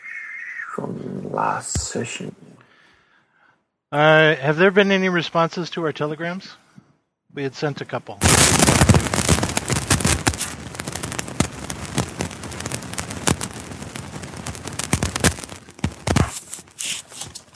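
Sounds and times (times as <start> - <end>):
speech: 0.8 - 2.7, 3.9 - 6.6, 7.4 - 8.7
loud burst of radio static: 8.2 - 17.5.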